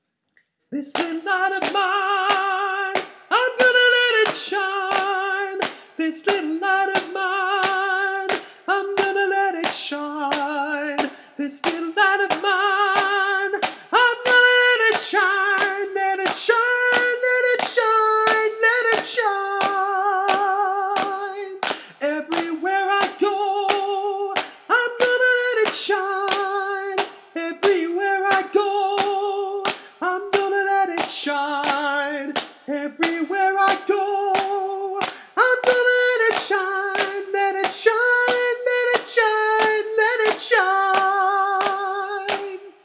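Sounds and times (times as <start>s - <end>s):
soprano singing a gospel song: 0.7s - 42.7s.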